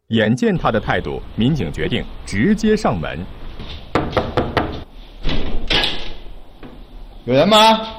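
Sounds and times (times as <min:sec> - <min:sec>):
speech: 0:00.1 - 0:03.8, 0:07.2 - 0:07.9
knocking on an ajar door of a home: 0:03.9 - 0:04.8.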